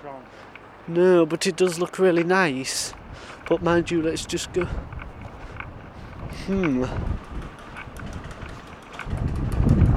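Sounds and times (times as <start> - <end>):
speech: 0.0 - 5.0, 6.3 - 7.4
strong wind buffeting the microphone: 2.7 - 9.9.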